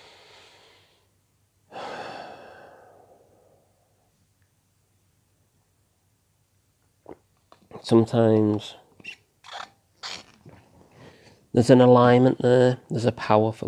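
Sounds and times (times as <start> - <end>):
deep breath in and out: 0.0 - 3.9
speech: 7.8 - 9.2, 11.6 - 13.6.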